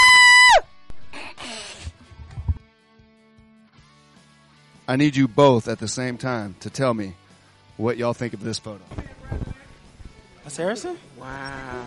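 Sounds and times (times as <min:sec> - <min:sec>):
person imitating a loud high-pitched playful scream: 0:00.0 - 0:00.6
speech: 0:04.9 - 0:07.2, 0:07.8 - 0:09.2, 0:10.5 - 0:11.8.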